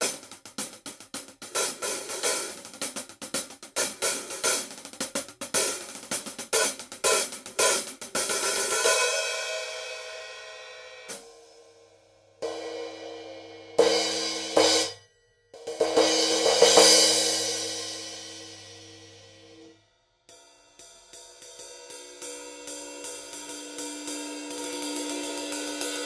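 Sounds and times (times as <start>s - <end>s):
Paiste PST8 cymbal set struck with hard sticks: 0.0s - 15.0s, 15.6s - 19.7s, 20.3s - 26.0s.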